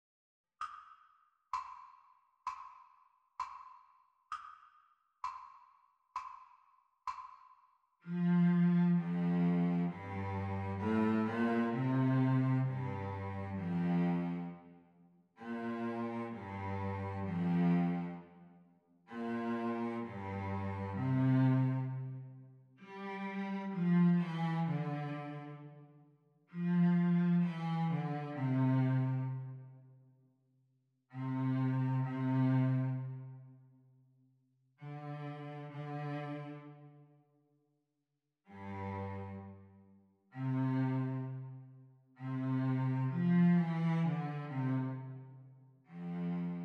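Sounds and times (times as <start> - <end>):
cello playing the teacher part of a sea song duet at practice speed: 8.0 - 14.6, 15.4 - 18.4, 19.1 - 25.8, 26.5 - 29.7, 31.1 - 33.4, 34.8 - 37.0, 38.5 - 41.6, 42.2 - 46.6.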